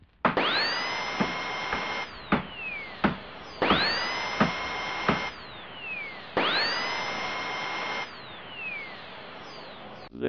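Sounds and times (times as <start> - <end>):
sharp clicks and knocks: 0.0 - 5.4
power drill boring through a computer hard drive: 0.3 - 10.1.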